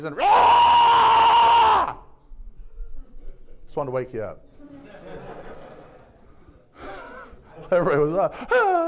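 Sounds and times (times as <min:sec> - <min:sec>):
speech: 0:00.0 - 0:00.7, 0:03.7 - 0:04.8, 0:07.7 - 0:08.8
voice imitating a person screeching in a downtown street: 0:00.2 - 0:02.0
laughter: 0:04.6 - 0:08.8.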